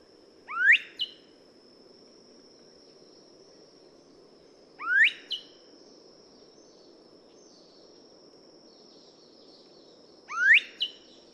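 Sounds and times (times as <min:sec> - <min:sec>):
dove whistling: 0:00.5 - 0:01.1, 0:04.8 - 0:05.4, 0:10.3 - 0:11.0.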